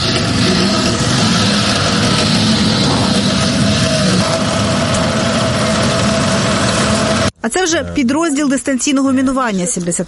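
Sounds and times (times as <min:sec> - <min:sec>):
Volya-E unmanned ground robotic vehicle engine running: 0:00.0 - 0:07.4
mechanical whir of unmanned ground robotic vehicle: 0:00.0 - 0:07.4
speech: 0:07.6 - 0:10.0.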